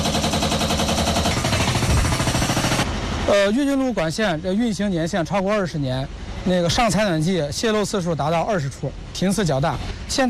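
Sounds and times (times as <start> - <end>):
rapid continuous mechanical rattling at a heating pipe network construction site in Shijiazhuang: 0.0 - 2.9
speech: 3.3 - 10.2.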